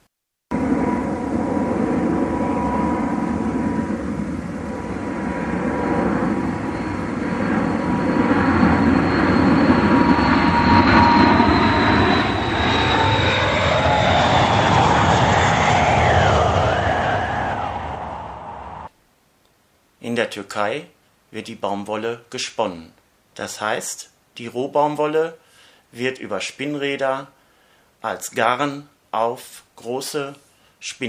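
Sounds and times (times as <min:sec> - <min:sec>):
airplane carrying bound bales of cotton flying overhead: 0:00.5 - 0:18.9
speech: 0:20.4 - 0:27.4, 0:28.0 - 0:31.0.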